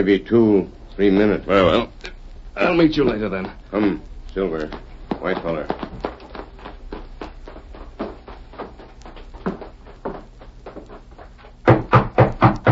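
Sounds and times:
speech: 0.0s - 2.0s, 2.6s - 6.1s
knocking on a wooden door: 11.7s - 12.6s.

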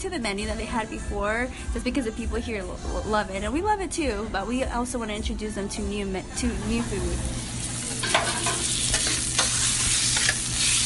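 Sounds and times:
speech: 0.0s - 7.5s
chicken fajitas with tomatoes green peppers and onions sizzling on a hot grill top: 6.6s - 10.8s.

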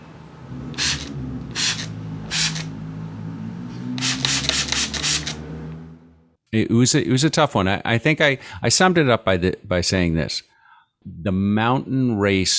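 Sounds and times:
spray bottle spritzing: 0.8s - 2.7s, 4.0s - 5.4s
speech: 6.5s - 12.5s.

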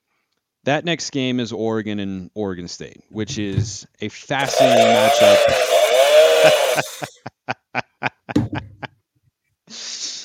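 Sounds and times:
speech: 0.6s - 5.8s, 6.4s - 7.8s
toy chainsaw sound effect revving: 4.4s - 7.1s.

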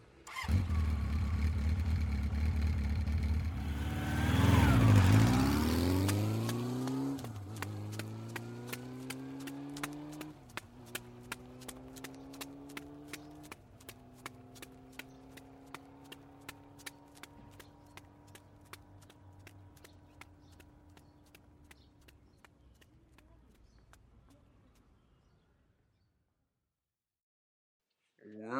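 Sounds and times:
small scooter engine revving and pulling away toward a park: 0.3s - 18.1s
running footfalls of a person running alongside a scooter toward a park: 5.1s - 24.9s
person speaking: 28.2s - 28.5s.

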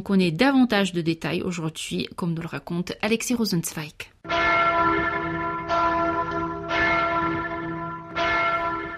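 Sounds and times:
speech: 0.0s - 4.4s
church bells ringing: 4.3s - 8.9s.

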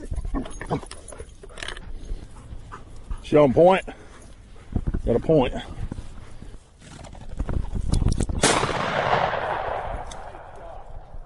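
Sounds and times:
rustling and movement: 0.0s - 11.2s
speech: 3.3s - 4.0s, 5.0s - 5.8s
gunshot during a hunt with a pointing dog: 8.4s - 10.8s.

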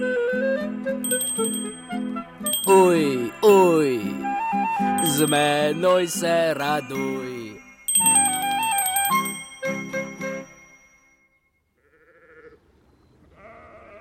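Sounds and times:
small bell jingling: 1.0s - 11.3s
speech: 2.7s - 4.1s, 5.2s - 7.4s
sheep bleating: 11.8s - 12.6s, 13.4s - 13.9s.

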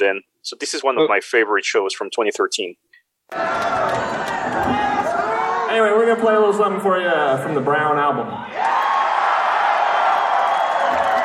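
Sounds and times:
speech: 0.0s - 5.0s, 5.7s - 8.8s
concert crowd cheering and whooping: 3.3s - 5.8s, 8.4s - 11.2s.

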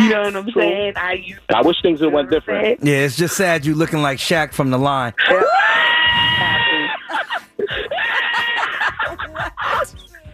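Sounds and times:
speech: 0.1s - 6.3s
person screaming shrilly: 5.2s - 7.0s
person laughing in high-pitched bursts: 5.2s - 10.0s.

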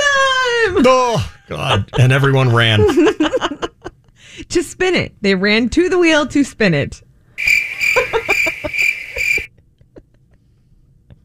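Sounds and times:
laughter: 0.0s - 4.0s, 7.7s - 10.4s
speech: 0.7s - 3.6s, 4.5s - 7.6s
cricket chirping: 7.4s - 9.5s.

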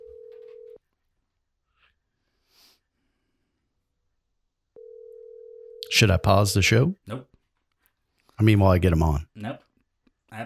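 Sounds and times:
messaging app call electronic ringing tone: 0.0s - 0.8s, 4.8s - 6.0s
speech: 5.9s - 7.3s, 8.4s - 9.6s.

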